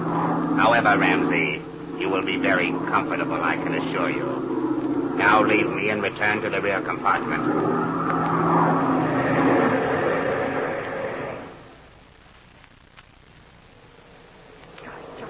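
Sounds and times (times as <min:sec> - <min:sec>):
airplane engine roaring and throttling down: 0:00.0 - 0:11.7
speech: 0:00.8 - 0:04.6, 0:05.2 - 0:07.8.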